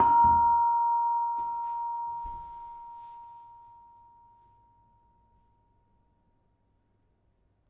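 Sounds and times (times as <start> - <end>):
kempyang gamelan gong: 0.0 - 3.7.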